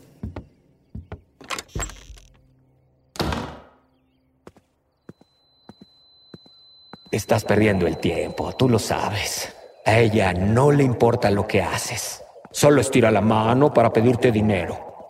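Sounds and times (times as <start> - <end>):
footsteps of a man carrying a child on a hard floor: 0.2 - 1.3
speech: 7.1 - 14.9.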